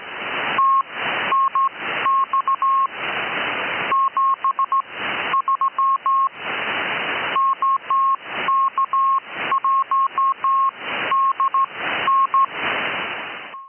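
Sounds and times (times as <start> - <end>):
constant hiss of radio static: 0.0 - 13.6
louder noise bursts: 0.0 - 13.6
Morse code CW signals on radio: 0.6 - 2.9, 3.9 - 6.3, 7.4 - 12.5.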